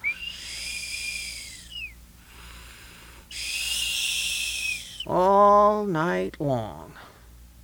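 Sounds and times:
person imitating whistling through the nose while breathing: 0.0 - 5.1
soft airy inhale: 0.1 - 5.1
speech: 5.1 - 7.0.

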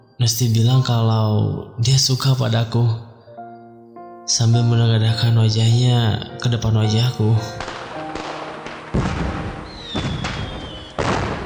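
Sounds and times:
speech: 0.2 - 3.1, 4.3 - 7.7, 8.9 - 9.2
fireworks booming in the night air: 7.6 - 11.4.

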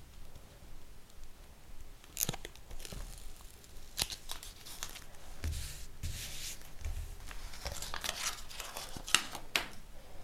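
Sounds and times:
sticker packets tearing and crinkling: 2.1 - 5.1, 6.3 - 9.6.

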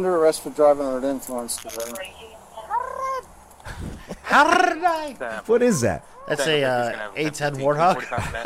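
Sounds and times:
speech: 0.0 - 2.4, 3.8 - 8.4
woman's shrill rolling R trill: 2.6 - 3.3
laughter: 3.6 - 8.4.

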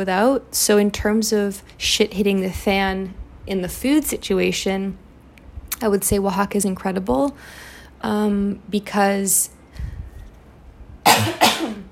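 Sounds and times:
speech: 0.0 - 5.0, 5.8 - 9.9
dry coughs from a parched throat after long talking: 11.0 - 11.8.

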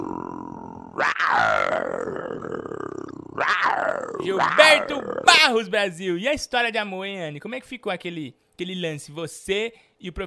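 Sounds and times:
man imitating a big cat roar: 0.0 - 5.6
speech: 4.0 - 10.2.

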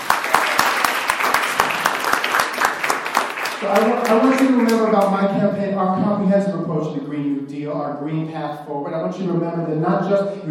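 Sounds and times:
audience applause: 0.0 - 5.1
speech: 3.6 - 10.4.

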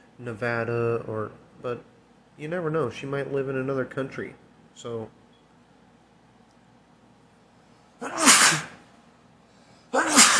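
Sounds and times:
speech: 0.2 - 5.2
person sneezing: 8.0 - 8.8, 9.9 - 10.3.

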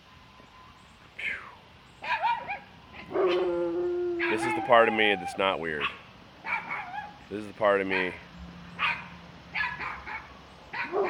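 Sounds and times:
dog barking behind a fence: 2.0 - 3.5, 4.2 - 7.2, 7.9 - 8.2, 8.8 - 11.0
speech: 4.7 - 6.0, 7.3 - 8.3.

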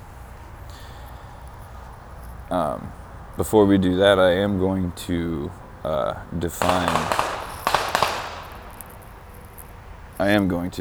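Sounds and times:
speech: 2.5 - 7.2, 10.2 - 10.7
fireworks popping outside with sharp cracks and tails: 6.6 - 9.5.

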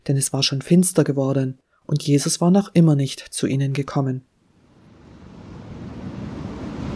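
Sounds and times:
speech: 0.1 - 4.3
choppy lake waves churned by strong wind: 4.8 - 6.9.

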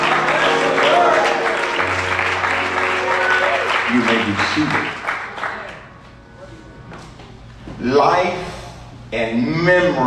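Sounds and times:
audience shouting together: 0.0 - 3.9
audience clapping: 0.0 - 6.2
speech: 4.0 - 5.0, 7.9 - 8.5, 9.1 - 10.0.

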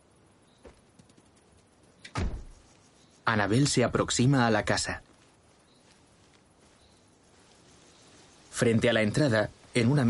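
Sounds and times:
faint clicks of a car rear door opening: 0.6 - 2.2
car rear door thud as a dog gets out: 2.1 - 2.6
speech: 3.3 - 5.1, 8.6 - 10.0.

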